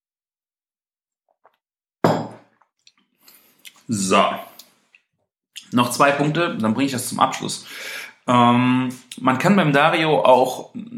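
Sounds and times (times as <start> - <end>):
cup knocking against a hard surface: 2.0 - 2.5
person sipping cold coffee: 2.5 - 5.1
speech: 3.9 - 4.5, 5.7 - 10.9.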